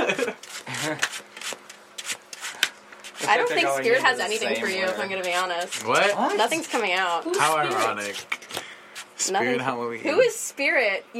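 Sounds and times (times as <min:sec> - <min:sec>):
tarot cards being shuffled: 0:00.4 - 0:09.2
speech: 0:00.9 - 0:01.1, 0:03.3 - 0:08.4, 0:09.3 - 0:11.1.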